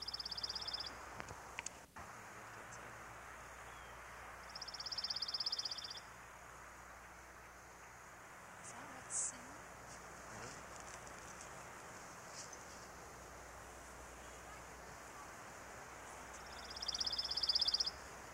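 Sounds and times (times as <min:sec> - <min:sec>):
pine warbler gentle trill: 0:00.0 - 0:00.9, 0:03.7 - 0:06.0, 0:16.4 - 0:18.0
faint steady outdoor background: 0:00.0 - 0:18.3.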